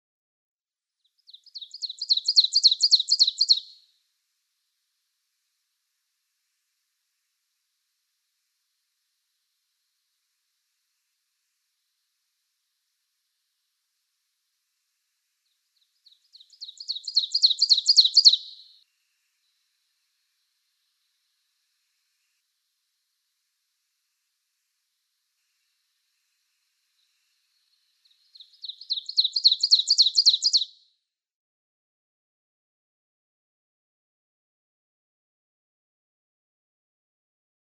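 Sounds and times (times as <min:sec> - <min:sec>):
Northern Waterthrush singing: 0:01.2 - 0:03.8, 0:15.5 - 0:18.8, 0:27.0 - 0:30.8.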